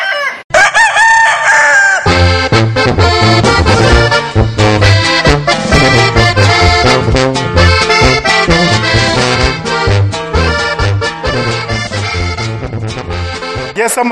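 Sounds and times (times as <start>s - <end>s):
rooster crowing: 0.0s - 2.2s
upbeat music with a steady beat: 2.1s - 14.1s.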